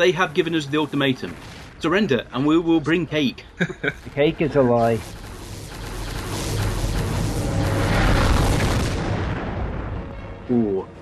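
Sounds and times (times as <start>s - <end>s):
speech: 0.0s - 5.2s, 10.5s - 11.0s
cinematic CGI explosion from a TV space battle: 5.0s - 10.2s.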